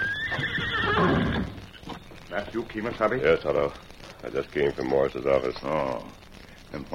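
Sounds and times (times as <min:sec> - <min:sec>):
horse whinnying at the edge of a town: 0:00.0 - 0:01.8
horse hooves shuffling: 0:00.0 - 0:06.9
speech: 0:02.4 - 0:06.9.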